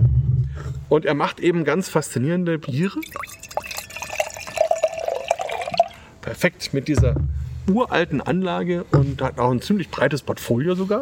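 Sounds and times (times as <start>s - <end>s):
speech: 0.9s - 3.4s, 6.3s - 11.0s
beer pouring into a glass: 2.7s - 6.1s.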